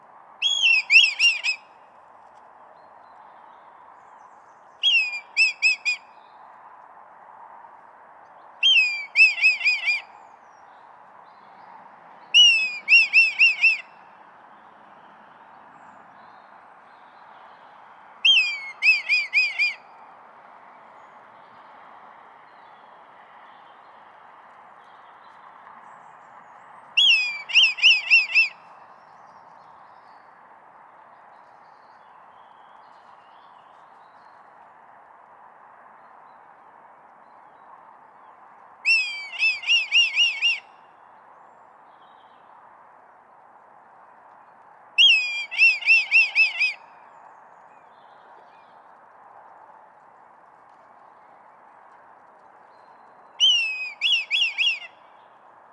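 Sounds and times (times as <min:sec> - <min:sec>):
red kite calling: 0:00.4 - 0:01.7, 0:04.8 - 0:06.1, 0:08.6 - 0:10.2, 0:12.4 - 0:13.9, 0:18.2 - 0:19.8, 0:27.0 - 0:28.7, 0:38.9 - 0:40.7, 0:45.0 - 0:46.9, 0:53.4 - 0:55.0.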